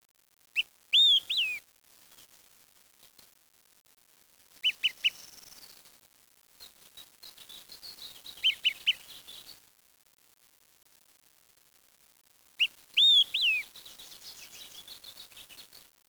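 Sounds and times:
bird chirping: 0.6 - 1.6, 4.6 - 5.7, 7.0 - 9.6, 12.6 - 15.7.

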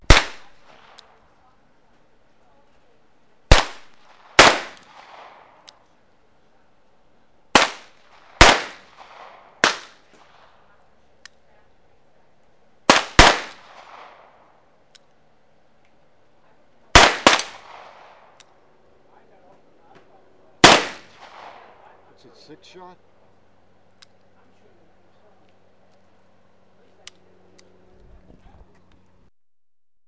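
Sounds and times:
gunfire: 0.0 - 1.2, 3.5 - 5.7, 7.5 - 10.6, 12.9 - 14.5, 17.0 - 18.4, 20.6 - 21.9.

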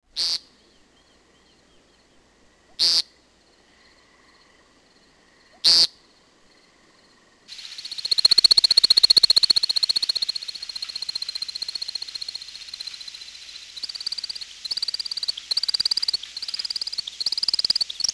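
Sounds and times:
American woodcock peent calls: 2.8 - 3.0, 7.6 - 18.1
high twittering: 7.6 - 18.1.

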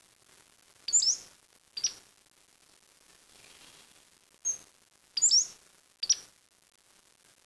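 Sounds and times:
high bird chirps: 0.9 - 2.0, 5.2 - 5.5, 6.0 - 6.2.

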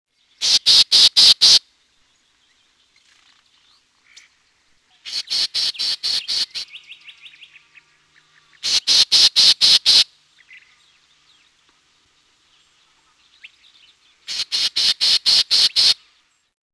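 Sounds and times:
black-tailed gnatcatcher harsh rasping call notes: 0.4 - 1.6, 5.0 - 6.8, 8.5 - 10.7, 14.3 - 16.0.

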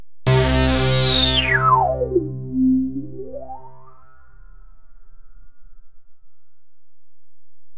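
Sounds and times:
synthesizer: 0.3 - 4.4.

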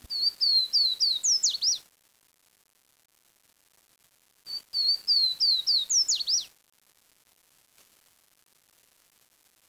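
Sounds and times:
bird calling in high clear whistled notes: 0.1 - 1.8, 5.1 - 6.4.

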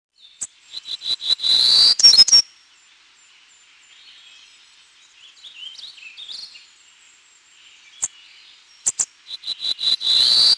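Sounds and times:
Townsend's Warbler singing high buzzy notes: 0.2 - 10.5.

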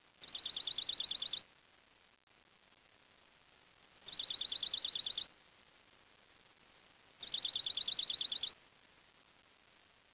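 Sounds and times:
bird call trill: 0.2 - 1.4, 4.1 - 5.3, 7.2 - 8.5.

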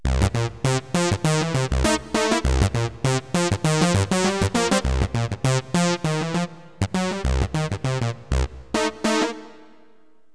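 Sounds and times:
sawtooth wave tone: 0.0 - 9.8.

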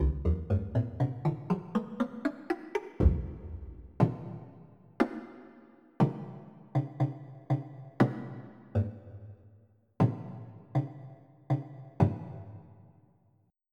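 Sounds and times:
woodblock: 0.0 - 9.0, 10.0 - 12.8.

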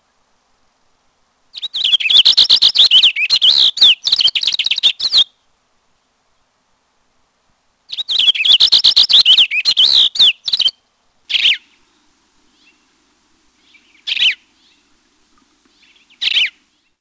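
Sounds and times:
Cassin's finch singing: 1.5 - 5.3, 7.9 - 13.0, 13.6 - 16.9.

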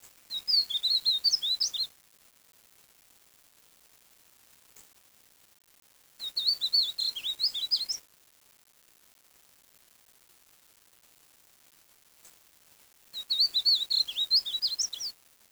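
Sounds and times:
bird song of rapid high jumbled twittering notes: 0.3 - 1.9, 6.2 - 8.0, 13.2 - 15.1.

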